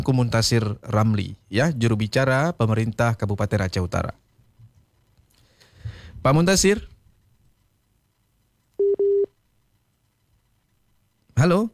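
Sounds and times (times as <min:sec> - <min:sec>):
speech: 0:00.0 - 0:04.2, 0:06.2 - 0:06.9, 0:11.4 - 0:11.7
WhatsApp call connecting beeps: 0:08.8 - 0:09.3.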